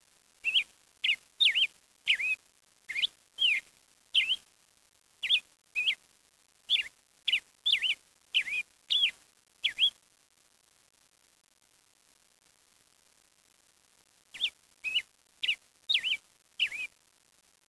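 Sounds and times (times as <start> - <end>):
bird giving short clear whistled notes with a pitch bend: 0.5 - 3.6, 4.2 - 4.4, 6.7 - 9.1, 9.7 - 9.9, 14.4 - 16.9.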